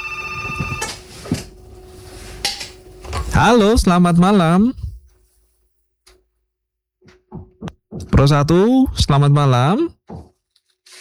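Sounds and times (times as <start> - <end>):
telephone ringing with steady electronic tone: 0.0 - 1.6
speech: 3.4 - 4.8, 8.2 - 10.0.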